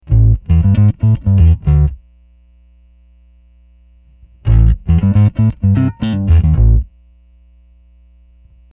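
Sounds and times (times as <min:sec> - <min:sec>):
bass guitar through Zoom B3 with neck off: 0:00.0 - 0:02.0, 0:04.2 - 0:06.9.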